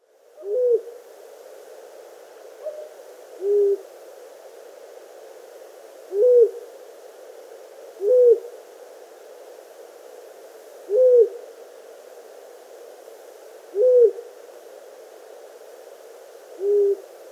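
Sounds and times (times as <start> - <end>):
quiet background hiss: 0.0 - 17.3
long-eared owl hooting: 0.4 - 1.0, 2.6 - 3.9, 6.1 - 6.6, 8.0 - 8.5, 10.9 - 11.4, 13.7 - 14.3, 16.6 - 17.1.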